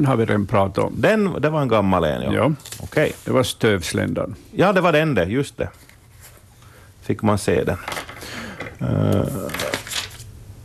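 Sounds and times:
speech: 0:00.0 - 0:05.8, 0:07.1 - 0:08.1, 0:08.8 - 0:09.6
paper pages being leafed through: 0:02.4 - 0:03.4, 0:09.4 - 0:10.3.

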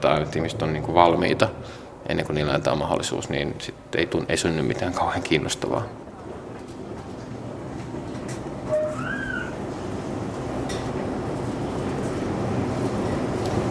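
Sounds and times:
speech: 0:00.0 - 0:06.1
metro train moving through an echoing underground metro station: 0:00.0 - 0:13.7
high metallic wheel squeal of a metro train: 0:08.7 - 0:09.6.

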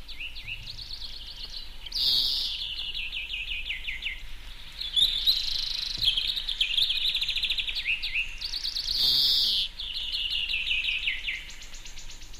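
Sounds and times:
European greenfinch singing with twittering trills and wheezing notes: 0:00.0 - 0:12.3.

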